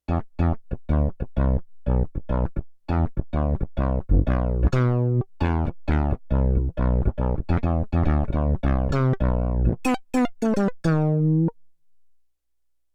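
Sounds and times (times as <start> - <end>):
Rubber Bass synth bass on Roland VC-1: 0.1 - 11.6.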